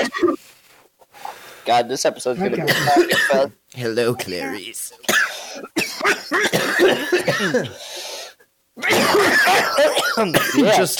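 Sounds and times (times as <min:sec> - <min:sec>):
people coughing with rough hacking coughs: 0:00.0 - 0:00.4, 0:02.4 - 0:03.5, 0:04.1 - 0:07.8, 0:08.8 - 0:10.9
speech: 0:01.7 - 0:05.7, 0:06.3 - 0:08.0, 0:08.8 - 0:10.9.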